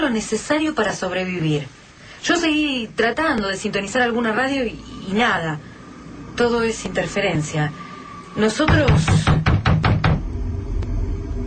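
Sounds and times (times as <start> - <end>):
speech: 0.0 - 5.7, 6.4 - 7.8, 8.4 - 9.3
low droning hum: 2.9 - 11.4
loud heavy knocks on a door: 8.7 - 10.2.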